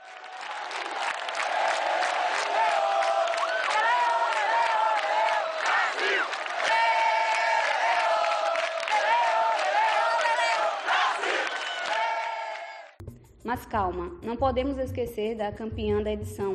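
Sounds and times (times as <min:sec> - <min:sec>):
huge stadium crowd of football fans chanting a traditional song in unison: 0:00.0 - 0:12.9
speech: 0:13.5 - 0:16.5.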